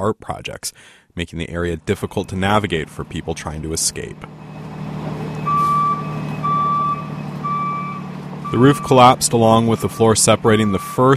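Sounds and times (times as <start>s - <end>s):
speech: 0.0s - 4.6s, 8.5s - 11.1s
low dump truck engine rumble: 1.3s - 11.1s
reversing beeps from dump trucks clearing debris: 5.3s - 11.1s.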